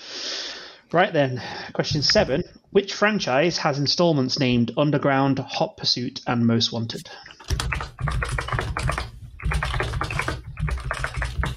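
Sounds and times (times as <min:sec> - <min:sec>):
speech: 0:00.9 - 0:08.2
typing on a mechanical keyboard: 0:07.3 - 0:11.5.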